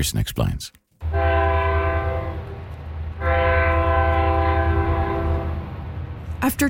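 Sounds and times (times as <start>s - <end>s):
speech: 0.0s - 0.8s, 6.4s - 6.6s
passenger train horn blasts at a train station in British Columbia: 1.0s - 5.8s
passenger train wheels rolling on the rails: 1.0s - 6.6s.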